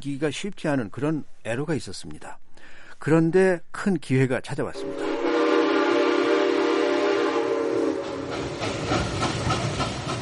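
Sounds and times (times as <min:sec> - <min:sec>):
speech: 0:00.0 - 0:02.4, 0:03.0 - 0:05.0
steam train whistle: 0:04.8 - 0:08.6
broad hissing steam: 0:04.8 - 0:10.1
steam train engine chuffing and rumbling: 0:06.0 - 0:10.1.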